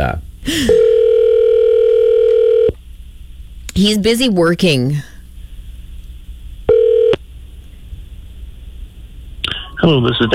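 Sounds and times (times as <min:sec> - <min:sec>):
speech: 0:00.0 - 0:01.0, 0:03.8 - 0:05.1, 0:09.8 - 0:10.3
steady electronic phone tone while calling a local number: 0:00.7 - 0:02.7, 0:06.7 - 0:07.2.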